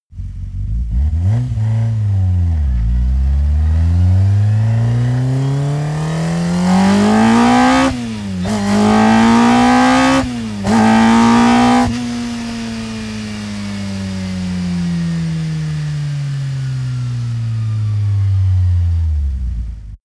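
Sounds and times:
car accelerating fast, decelerating and stopping: 0:00.2 - 0:20.0.

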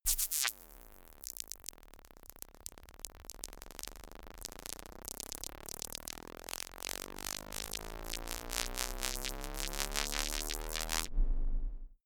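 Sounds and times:
organic science fiction glitch riser: 0:03.7 - 0:12.0.

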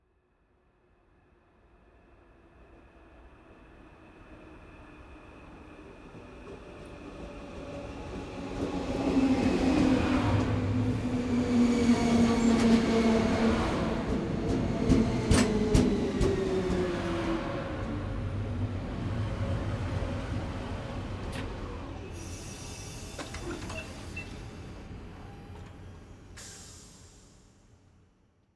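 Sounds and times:
passenger train arriving: 0:02.0 - 0:27.8
passenger train doors opening: 0:08.0 - 0:27.3.

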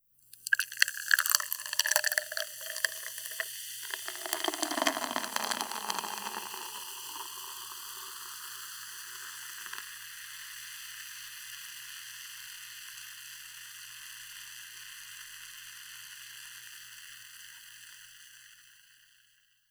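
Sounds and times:
beer pouring into glass: 0:00.4 - 0:09.8.

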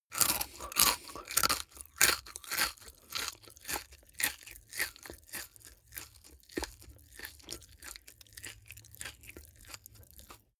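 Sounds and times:
eating crisps with mouth open: 0:00.1 - 0:10.4.

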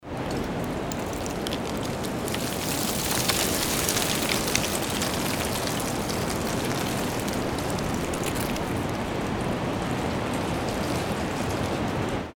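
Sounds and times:
wind: 0:00.0 - 0:12.3
rain: 0:00.1 - 0:12.3.

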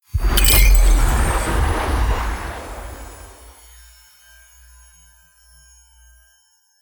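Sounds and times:
magic spell storm wind swooshes: 0:00.2 - 0:03.8.

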